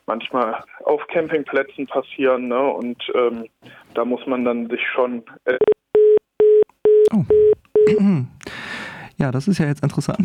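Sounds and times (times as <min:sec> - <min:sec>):
speech: 0:00.1 - 0:05.7, 0:07.1 - 0:10.2
telephone busy tone after a dropped phone call: 0:05.6 - 0:07.9.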